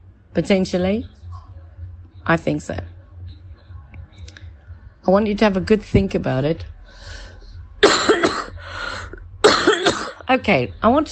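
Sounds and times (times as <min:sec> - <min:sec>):
speech: 0:00.4 - 0:01.2, 0:02.2 - 0:02.9, 0:05.0 - 0:07.2, 0:10.3 - 0:11.1
person coughing harshly: 0:07.8 - 0:08.6, 0:09.4 - 0:10.2.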